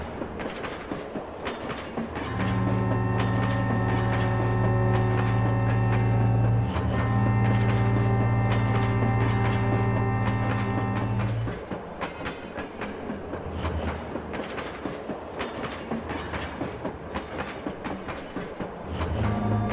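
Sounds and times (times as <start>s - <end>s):
clickety-clack of train wheels over rail joints: 0.0s - 19.7s
train rumbling: 0.0s - 19.7s
train deep droning horn-like tone: 2.2s - 11.6s, 19.0s - 19.7s.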